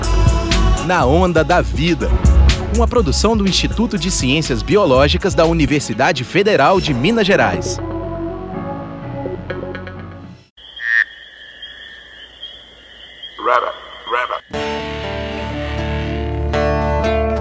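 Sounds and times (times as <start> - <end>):
music: 0.0 - 10.5, 14.5 - 17.4
speech: 0.9 - 8.0
frog croaking: 10.6 - 14.6.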